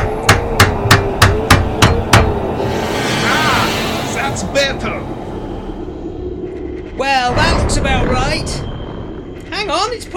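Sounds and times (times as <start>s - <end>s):
hammer striking: 0.0s - 2.4s
low rumbling noise: 0.0s - 10.1s
speech: 9.8s - 10.1s.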